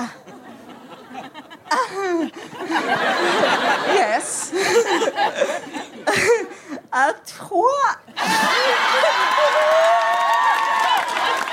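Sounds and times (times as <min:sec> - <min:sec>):
laughter: 0:00.0 - 0:06.7, 0:08.1 - 0:11.5
speech: 0:02.3 - 0:06.4
live audience cheering and whooping: 0:08.2 - 0:11.5
live audience applauding: 0:08.6 - 0:11.5.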